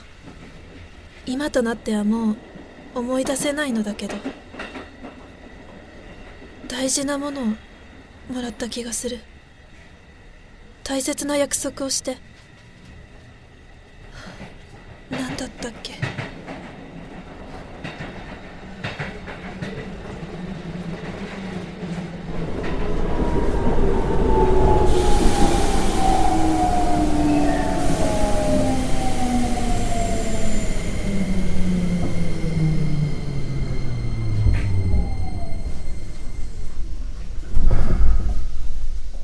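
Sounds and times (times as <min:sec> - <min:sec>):
train rumble: 0:00.0 - 0:39.2
speech: 0:01.3 - 0:04.4, 0:06.7 - 0:07.7, 0:08.3 - 0:09.3, 0:10.9 - 0:12.3
train brakes squealing as the train slows to a halt: 0:22.5 - 0:39.2
hiss of released air from a train: 0:24.9 - 0:26.4.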